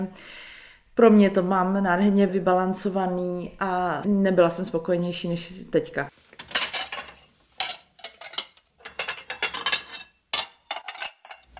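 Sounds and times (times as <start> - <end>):
speech: 0.0 - 0.4, 1.0 - 6.4
plates and glasses clinking at a dish rental service: 6.4 - 11.5.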